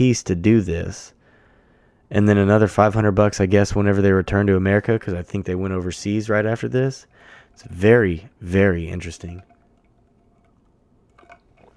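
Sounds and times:
speech: 0.0s - 1.2s, 2.1s - 9.5s
person drinking water with wet swallowing and gulping: 9.4s - 11.7s.

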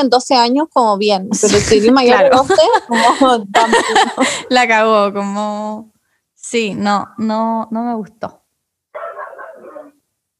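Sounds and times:
speech: 0.0s - 8.4s
laughter: 1.6s - 4.6s, 9.0s - 9.9s
dog barking: 9.0s - 10.0s.

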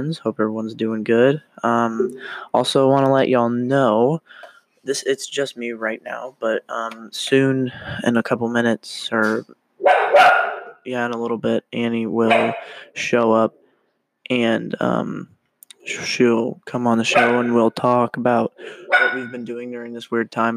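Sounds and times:
speech: 0.0s - 13.6s, 14.3s - 20.5s
dog barking at a passerby: 9.8s - 10.8s, 12.3s - 12.8s, 17.1s - 17.6s, 18.8s - 19.3s.

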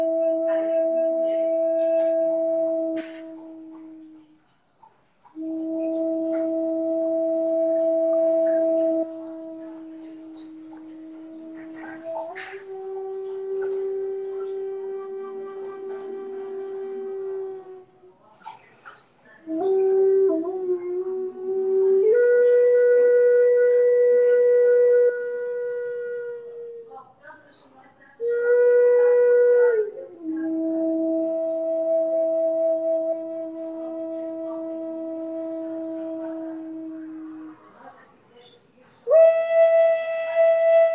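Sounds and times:
wolf howl imitated on a flute: 0.0s - 4.5s, 5.3s - 18.1s, 19.4s - 27.0s, 28.2s - 37.8s, 39.1s - 40.9s.

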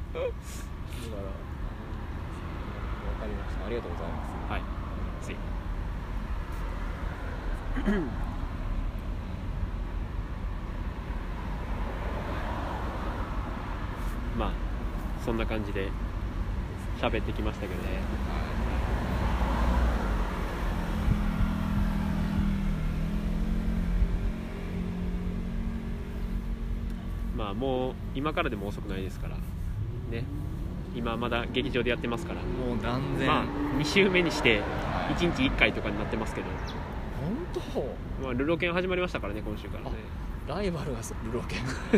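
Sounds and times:
cars driving past outside on a road: 0.0s - 41.9s
speech: 3.2s - 5.7s, 7.8s - 8.3s, 15.3s - 16.1s, 17.0s - 18.7s, 27.5s - 41.9s
sparrow chirp: 36.5s - 36.9s.

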